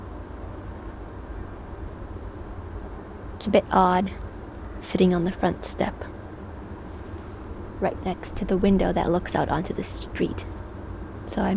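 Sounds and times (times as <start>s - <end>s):
distant train rumbling heard from a front step by a street in cold weather: 0.0s - 11.5s
speech: 3.4s - 4.2s, 4.8s - 6.2s, 7.8s - 10.6s, 11.3s - 11.5s.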